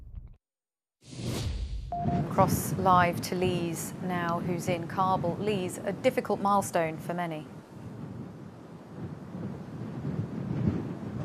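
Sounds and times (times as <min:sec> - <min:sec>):
speech: 0:02.0 - 0:07.6
low-pitched wind rumble buffeting a microphone on an outdoor balcony: 0:02.1 - 0:11.2.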